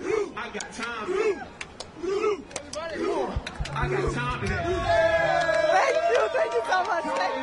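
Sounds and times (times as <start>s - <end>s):
large crowd of football fans chattering in a stadium: 2.1s - 7.4s
Norwegian football fans chanting and singing in a stadium: 3.2s - 6.3s.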